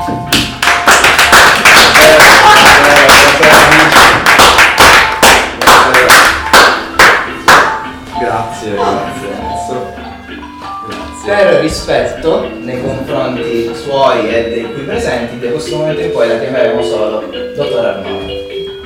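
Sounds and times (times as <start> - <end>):
crowd applauding: 0.6 - 7.8
speech: 11.4 - 18.2.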